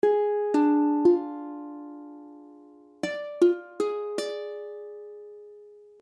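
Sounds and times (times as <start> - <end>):
ukulele D diminished chord: 0.0 - 6.0.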